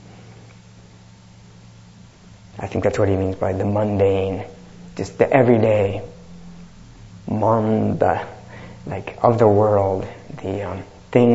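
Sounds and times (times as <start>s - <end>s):
speech: 2.6s - 6.1s, 7.3s - 11.3s
hum of cars on a highway: 3.2s - 11.2s.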